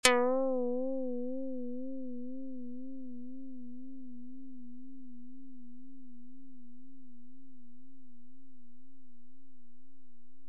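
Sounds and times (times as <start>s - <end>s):
Karplus-Strong plucked string synth with vibrato: 0.0s - 4.2s.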